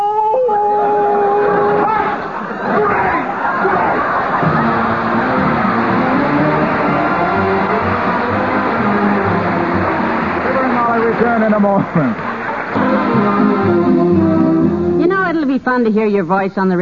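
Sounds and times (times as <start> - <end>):
singing voice imitating a dog howling: 0.0 - 2.1
laughter: 0.8 - 14.7
crowd hubbub and chatter: 1.0 - 15.6
speech: 11.4 - 12.2, 15.7 - 16.8.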